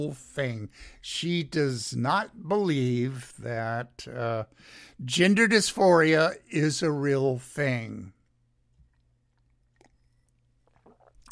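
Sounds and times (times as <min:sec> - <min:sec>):
speech: 0:00.0 - 0:08.2
person sipping a drink: 0:08.7 - 0:11.3
swallowing with mouth clicks: 0:08.8 - 0:11.3.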